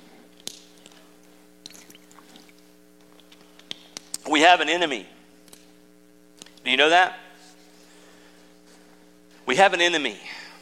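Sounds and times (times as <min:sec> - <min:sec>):
steady low electrical hum: 0:00.0 - 0:10.6
person drinking water: 0:00.3 - 0:03.7
speech: 0:04.4 - 0:05.2, 0:06.7 - 0:07.2, 0:09.5 - 0:10.3.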